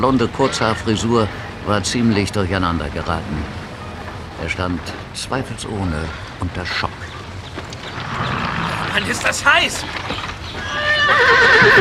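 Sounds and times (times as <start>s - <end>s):
speech: 0.0s - 3.6s, 4.4s - 7.1s, 9.0s - 10.6s, 11.2s - 11.7s
horse neighing: 7.9s - 9.9s, 10.6s - 11.7s.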